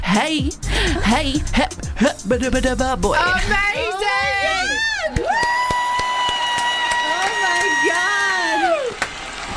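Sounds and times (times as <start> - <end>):
speech: 0.2 - 5.5
crowd whoops and shouts: 4.2 - 9.0
audience clapping: 5.1 - 9.5.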